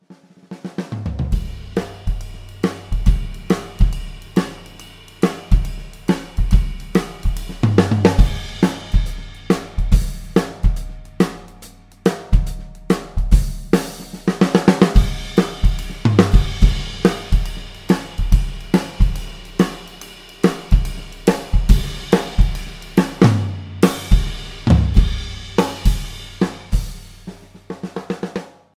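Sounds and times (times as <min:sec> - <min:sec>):
big beat groove: 0:00.7 - 0:28.4.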